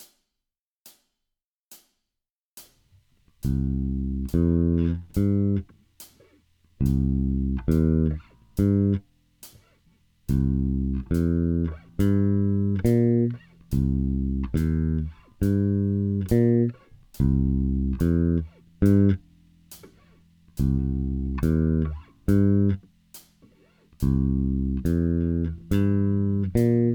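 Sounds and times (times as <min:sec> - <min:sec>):
rock bass guitar sequences: 0:03.4 - 0:05.7, 0:06.8 - 0:09.1, 0:10.3 - 0:26.9.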